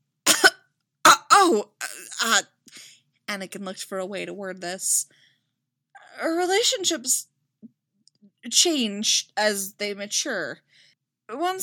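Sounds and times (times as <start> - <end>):
person acting out raspy throaty coughs: 0.3 - 2.4
speech: 1.5 - 5.2, 6.1 - 7.3, 8.4 - 11.6.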